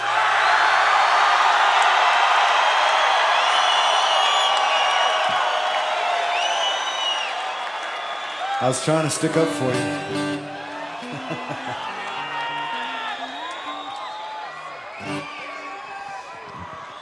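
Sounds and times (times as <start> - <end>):
large concert crowd cheering: 0.0 - 17.0
shrill whoops and whistles from a concert crowd: 3.2 - 5.5, 6.2 - 8.6, 11.9 - 17.0
speech: 8.6 - 12.0
laughter: 10.6 - 13.9.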